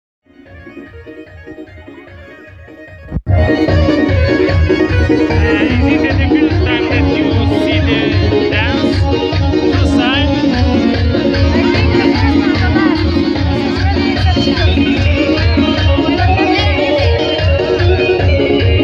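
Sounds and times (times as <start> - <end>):
Kurdish wedding music: 0.3 - 18.8
laughter: 5.0 - 17.0.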